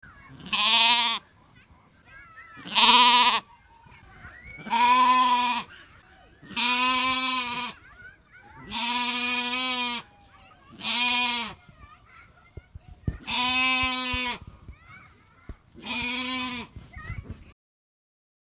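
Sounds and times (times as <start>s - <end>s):
sheep: 0.2s - 1.3s, 2.3s - 3.5s, 4.1s - 7.8s, 8.5s - 10.1s, 10.7s - 11.6s, 13.1s - 15.0s, 15.8s - 17.2s.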